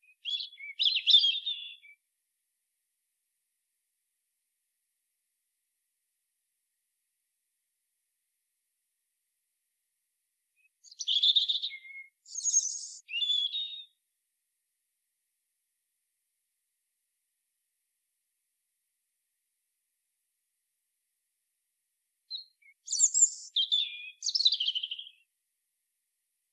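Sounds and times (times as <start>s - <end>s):
European robin Erithacus rubecula singing: 0.0s - 1.9s, 10.8s - 14.0s, 22.3s - 25.2s.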